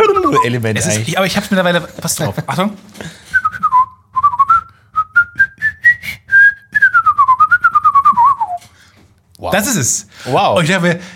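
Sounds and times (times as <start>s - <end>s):
person whistling a melody imitating an oboe tune: 0.0s - 0.5s, 3.3s - 8.7s
speech: 0.3s - 3.2s, 9.5s - 11.1s.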